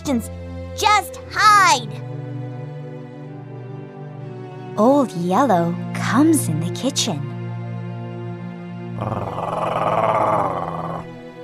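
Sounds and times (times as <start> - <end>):
speech: 0.0 - 2.1, 4.8 - 7.3
low rumbling dog growl: 9.0 - 11.2.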